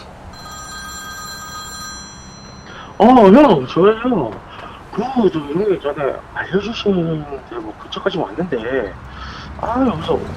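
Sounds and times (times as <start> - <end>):
phone ringback tone during outgoing call: 0.3 - 3.7
speech: 3.0 - 10.3.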